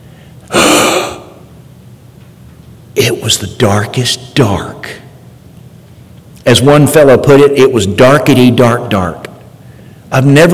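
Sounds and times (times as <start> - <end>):
person gasping for breath in the dark: 0.5 - 1.4
speech: 3.0 - 5.0, 6.4 - 9.2, 10.1 - 10.5.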